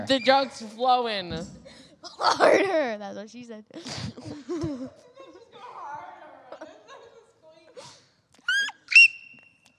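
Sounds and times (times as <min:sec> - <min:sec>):
speech: 0:00.0 - 0:05.1
person laughing: 0:03.8 - 0:05.0.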